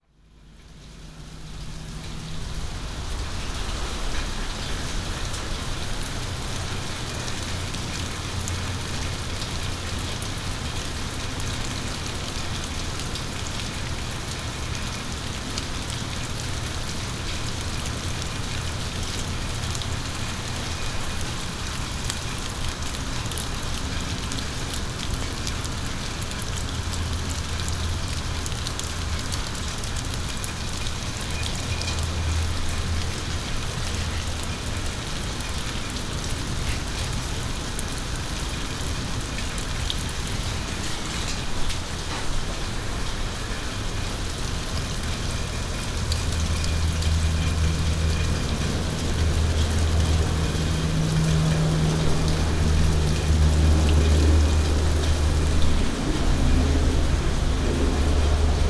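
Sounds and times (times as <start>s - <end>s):
rain: 0.0s - 58.6s.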